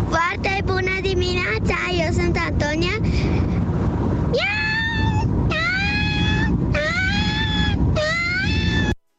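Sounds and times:
steady noise: 0.0s - 9.0s
voice imitating a distressed cat with wailing meows: 4.4s - 9.0s.

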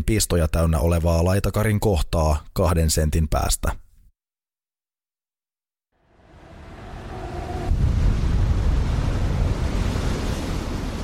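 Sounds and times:
speech: 0.1s - 3.8s
gusting wind at night: 6.1s - 11.0s
sea waves at night: 6.2s - 11.0s.

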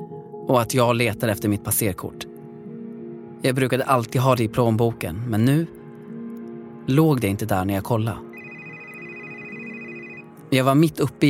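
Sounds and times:
speech: 0.5s - 2.3s, 3.4s - 5.8s, 6.9s - 8.3s, 10.5s - 11.2s
telephone ringing: 8.4s - 10.4s.

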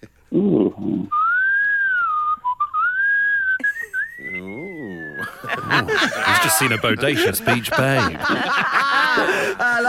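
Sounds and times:
short vocal sound: 0.3s - 1.3s, 4.2s - 5.3s
speech: 0.4s - 1.2s, 5.8s - 9.8s
loud human wolf whistle: 1.1s - 5.4s
laughter: 3.6s - 9.8s.

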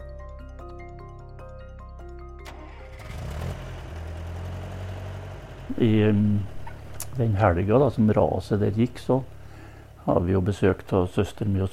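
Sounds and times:
car engine starting and running as the driver pulls away: 2.2s - 11.5s
speech: 5.7s - 6.6s, 7.2s - 9.4s, 10.0s - 11.7s.

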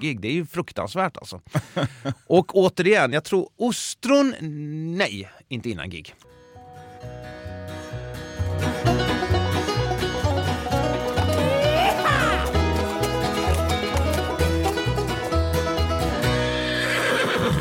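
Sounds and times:
speech: 0.0s - 6.3s
laughter: 1.5s - 2.3s, 11.0s - 14.1s
upbeat jingle with bouncy beat: 6.6s - 16.6s
horse whinnying: 11.2s - 13.5s, 16.5s - 17.5s.

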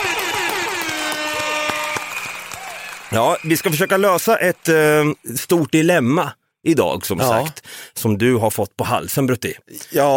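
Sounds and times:
buzzy birthday party horn tooting: 0.0s - 2.6s
sharp claps or clicks: 0.0s - 4.0s
speech: 3.1s - 10.1s.

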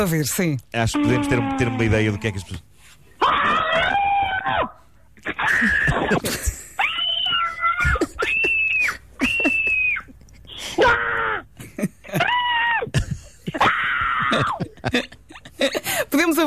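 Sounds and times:
speech: 0.0s - 3.6s, 5.3s - 6.6s
recorded human screams played back: 0.9s - 2.2s, 3.2s - 6.2s, 6.8s - 11.5s, 12.1s - 13.0s, 13.6s - 14.6s
laughter: 11.6s - 16.0s.

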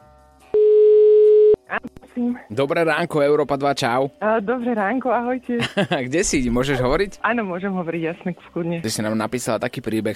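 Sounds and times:
telephone ringback tone: 0.6s - 1.6s
speech: 1.8s - 10.1s
laughter: 5.6s - 6.1s.

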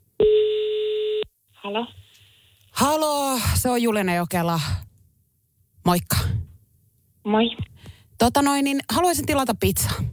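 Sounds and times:
telephone tone as a call is placed to order pizza: 0.2s - 1.3s
speech: 1.7s - 2.0s, 2.8s - 4.8s, 5.8s - 6.4s, 7.2s - 10.1s.

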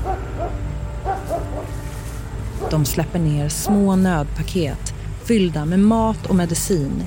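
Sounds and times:
military dogs barking: 0.0s - 1.8s
low droning rumble of airplanes: 0.0s - 7.0s
speech: 2.7s - 7.0s.

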